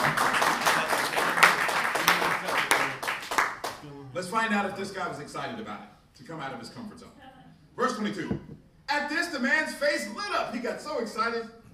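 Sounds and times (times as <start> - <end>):
audience clapping: 0.0 - 3.8
speech: 4.4 - 7.2, 7.8 - 11.6.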